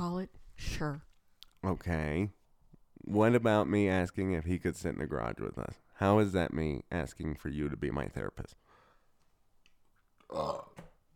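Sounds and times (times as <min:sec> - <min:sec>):
speech: 0:00.1 - 0:02.4, 0:03.1 - 0:08.6, 0:10.3 - 0:10.9
loud throaty burp: 0:10.2 - 0:11.0.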